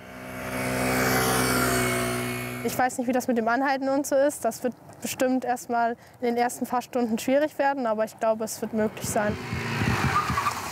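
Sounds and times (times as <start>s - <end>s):
car engine hum driving past through a slalom at 40 km/h: 0.0s - 2.8s, 8.7s - 10.6s
speech: 2.6s - 9.6s.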